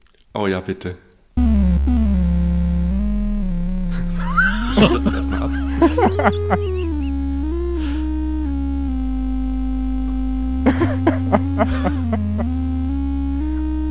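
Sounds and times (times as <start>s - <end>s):
speech: 0.4s - 1.1s, 4.8s - 5.2s, 6.0s - 6.8s
heavily distorted synthesizer playing a children's song melody: 1.4s - 13.8s
people laughing: 4.0s - 7.1s, 10.7s - 12.5s.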